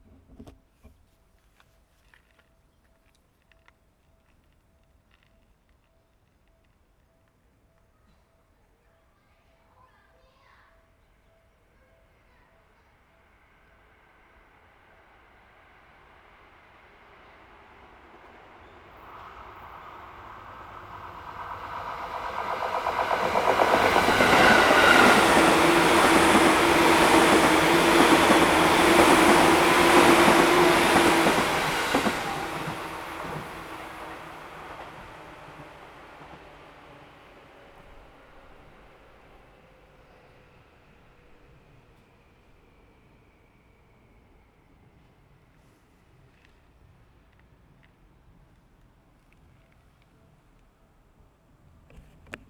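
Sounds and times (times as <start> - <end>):
outbound train passing: 12.1 - 48.6.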